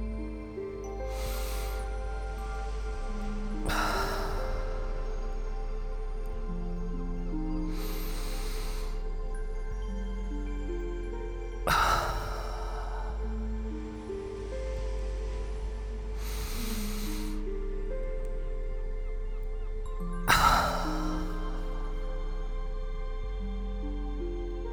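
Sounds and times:
slow deep breaths in a guided relaxation exercise: 0.0 - 9.9, 11.6 - 18.0, 20.3 - 22.4
sustained calm tones: 0.0 - 24.7.

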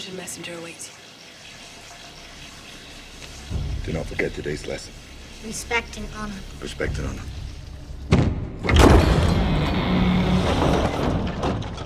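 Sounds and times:
speech: 0.0 - 1.1, 3.9 - 7.4
heavy door thudding open: 6.9 - 11.8.

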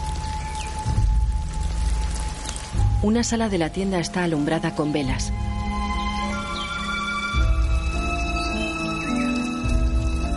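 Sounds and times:
steady rain falling: 0.0 - 10.3
speech: 3.0 - 5.5.

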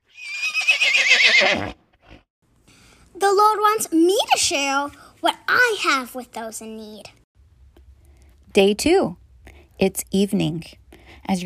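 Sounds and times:
horse neighing: 0.1 - 1.8
speech: 1.4 - 1.8, 3.2 - 7.2, 8.5 - 9.2, 9.8 - 11.4.

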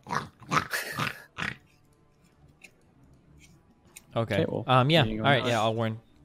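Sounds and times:
wild boar snorting and grunting in a video game: 0.0 - 1.8
speech: 4.2 - 6.1.

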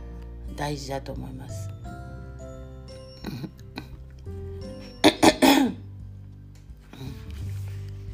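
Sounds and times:
speech: 0.6 - 1.8
person coughing: 5.0 - 5.8
throat clearing from a clogged throat: 5.0 - 5.8.

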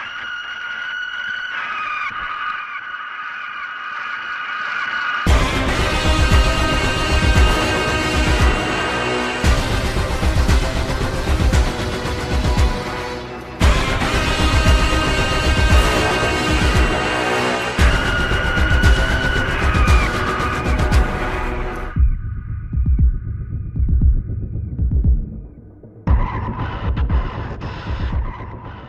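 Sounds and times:
piercing shrieking high tone: 0.0 - 22.0
orchestral film score playing a villain's theme: 5.3 - 22.2
pounding low percussion: 5.3 - 28.8.

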